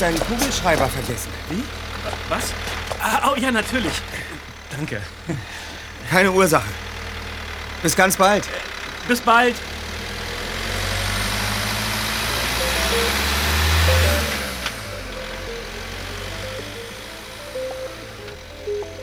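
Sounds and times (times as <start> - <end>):
speech: 0.0 - 6.9, 7.8 - 9.7
laughter: 0.0 - 17.0
car engine idling and pulling away around a corner: 0.0 - 19.0
faint melodic chime: 12.3 - 19.0.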